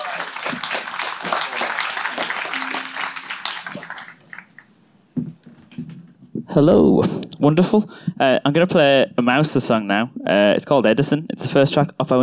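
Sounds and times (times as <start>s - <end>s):
audience applause: 0.0s - 4.7s
speech: 6.6s - 12.2s.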